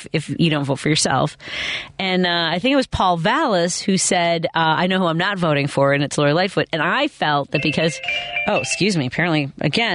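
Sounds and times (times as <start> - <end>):
speech: 0.0 - 9.9
mobile phone ringtone with melodic electronic chime: 7.6 - 9.0.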